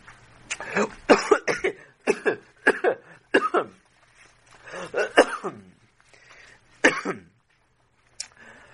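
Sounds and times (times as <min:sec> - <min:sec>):
rabbi clearing his throat: 0:00.7 - 0:03.8, 0:04.8 - 0:05.8, 0:06.8 - 0:07.4
rabbi coughing: 0:00.7 - 0:03.8, 0:04.7 - 0:05.8, 0:06.8 - 0:07.4.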